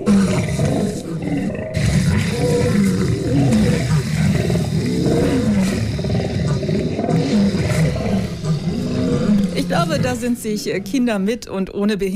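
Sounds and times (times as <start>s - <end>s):
lion roaring with a deep rumbling growl: 0.0s - 10.6s
speech: 10.0s - 12.1s.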